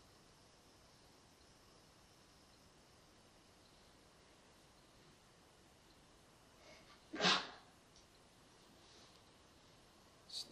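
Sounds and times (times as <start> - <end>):
hiss: 0.0 - 10.5
stifled sneeze: 7.1 - 7.6
speech: 10.4 - 10.5.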